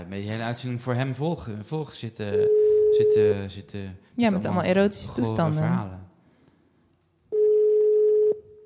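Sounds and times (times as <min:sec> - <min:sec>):
speech: 0:00.0 - 0:06.0
telephone call ringback tone: 0:07.3 - 0:08.4.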